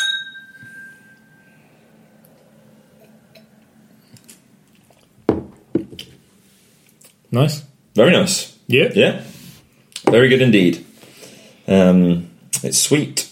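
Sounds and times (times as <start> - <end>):
glasses clinking in a toast: 0.0 - 1.6
faint ringing tone: 0.0 - 2.2
speech: 7.3 - 9.3, 10.1 - 10.9, 11.7 - 13.2.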